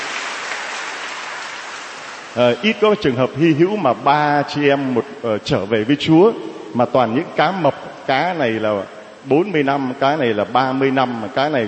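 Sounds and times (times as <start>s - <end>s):
crowd applauding at a church gathering: 0.0s - 2.6s
speech: 2.4s - 11.6s.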